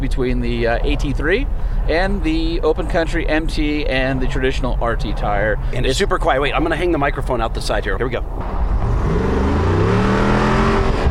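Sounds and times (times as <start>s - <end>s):
speech: 0.1s - 8.7s
V8 engine roaring as it accelerates, deep exhaust note: 8.4s - 11.1s.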